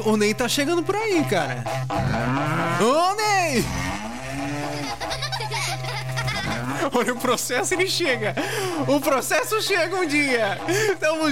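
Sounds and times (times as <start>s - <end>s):
speech: 0.0s - 4.0s, 6.8s - 11.3s
berrante cattle horn blown in long low tones: 0.7s - 5.1s, 6.4s - 6.9s, 8.6s - 11.3s
laughter: 4.4s - 11.3s.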